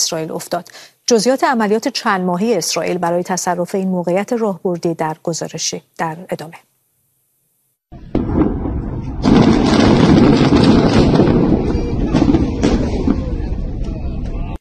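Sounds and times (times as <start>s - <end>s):
speech: 0.0s - 6.7s
massive explosion demolishing an underground tunnel network in southern Lebanon: 7.9s - 14.5s.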